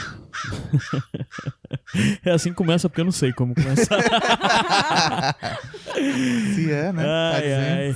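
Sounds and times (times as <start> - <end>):
crow cawing: 0.0 - 3.4, 5.3 - 6.1
laughter: 0.5 - 7.9
speech: 0.7 - 7.9.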